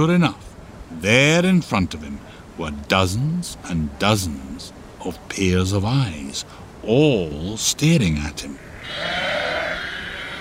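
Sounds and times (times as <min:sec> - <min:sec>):
speech: 0:00.0 - 0:09.4
sheep bleating: 0:08.8 - 0:10.3.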